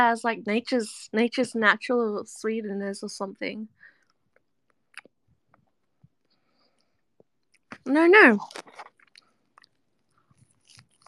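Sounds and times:
speech: 0.0 - 3.8, 7.8 - 8.9
person chewing crunchy food: 4.0 - 11.0.

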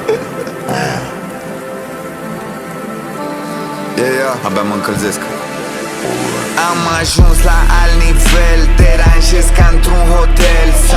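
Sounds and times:
steady rain pattering on a hard surface: 0.0 - 6.0
speech: 4.3 - 5.4, 6.0 - 10.9.

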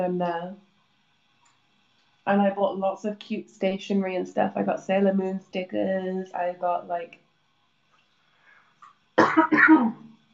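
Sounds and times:
speech: 0.0 - 0.7, 2.3 - 7.2, 9.3 - 10.0
throat clearing cough: 9.2 - 10.0.

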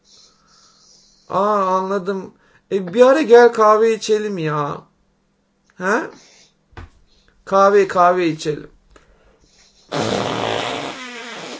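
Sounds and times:
speech: 1.3 - 4.9, 5.8 - 6.3, 7.5 - 8.8
loud drawn-out fart: 9.9 - 11.5.

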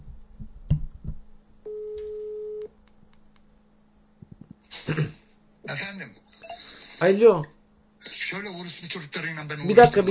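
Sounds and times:
phone ringback tone beep: 1.7 - 2.7
speech: 7.0 - 7.5, 8.3 - 10.1.

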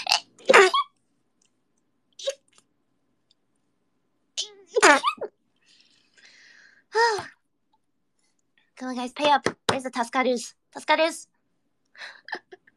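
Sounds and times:
person sneezing loudly: 0.0 - 0.9
speech: 8.8 - 11.4, 12.0 - 12.4.

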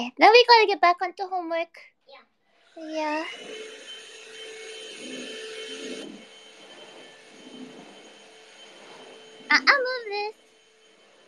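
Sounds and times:
speech: 0.0 - 4.0, 9.5 - 10.4
vacuum cleaner running: 2.6 - 11.2.

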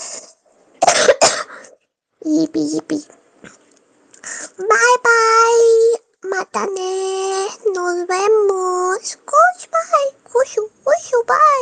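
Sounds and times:
person coughing: 0.8 - 1.7
speech: 2.3 - 3.6, 4.6 - 11.5.

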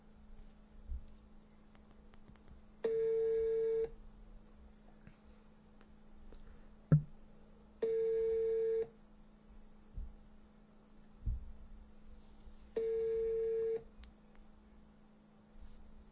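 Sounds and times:
faint low hum: 0.0 - 16.1
telephone ringing tones on a call not getting through: 2.8 - 3.9, 7.8 - 8.9, 12.8 - 13.8.

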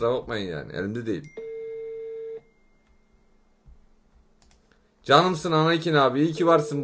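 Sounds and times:
speech: 0.0 - 1.4, 5.0 - 6.8
faint low noise on a telephone line: 0.0 - 6.8
telephone ringback tone on an outgoing call: 1.3 - 2.5.

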